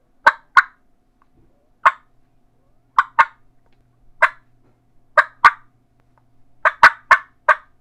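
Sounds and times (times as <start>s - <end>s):
turkey smackdown clucks: 0.2s - 0.8s, 1.8s - 2.1s, 2.9s - 3.5s, 4.2s - 4.5s, 5.2s - 5.7s, 6.6s - 7.7s.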